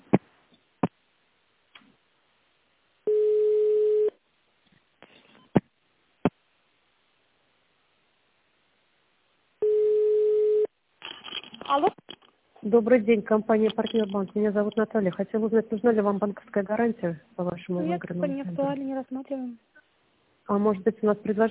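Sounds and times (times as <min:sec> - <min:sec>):
telephone ringback tone while a call is transferred: 0:03.1 - 0:04.1, 0:09.6 - 0:10.7
speech: 0:11.7 - 0:12.0, 0:12.7 - 0:19.7, 0:20.5 - 0:21.4.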